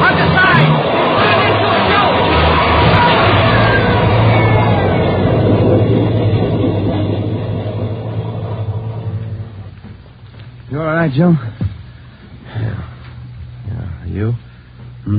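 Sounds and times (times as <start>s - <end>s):
underground train rushing through a tunnel: 0.0s - 11.7s
speech: 11.1s - 11.5s.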